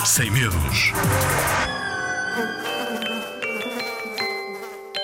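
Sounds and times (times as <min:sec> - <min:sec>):
speech: 0:00.2 - 0:01.6
flies buzzing: 0:02.3 - 0:05.0.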